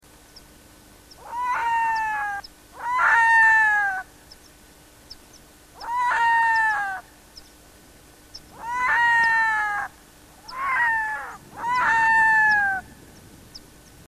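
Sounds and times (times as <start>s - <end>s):
red-throated loon calling: 1.1s - 4.4s, 5.7s - 7.2s, 8.3s - 13.0s.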